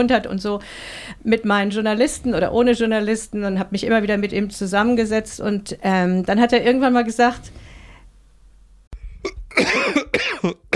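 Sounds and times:
speech: 0.0s - 7.6s, 9.2s - 10.7s
exhausted and thirsty person coughing: 9.2s - 10.7s.

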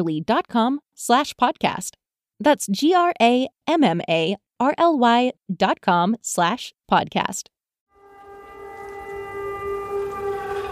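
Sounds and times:
speech: 0.0s - 7.6s
air raid siren in Ukraine wailing: 7.9s - 10.7s.

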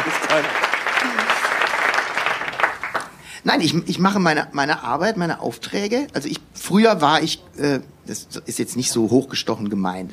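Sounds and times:
live audience applause: 0.0s - 3.2s
speech: 0.3s - 0.8s, 3.4s - 10.1s.

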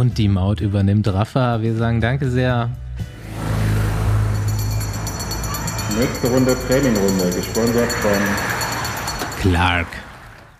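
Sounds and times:
speech: 0.0s - 3.2s, 5.9s - 8.6s, 9.4s - 10.1s
yellow bus engine drone on a drive from Italy to Belgium: 3.1s - 10.5s.

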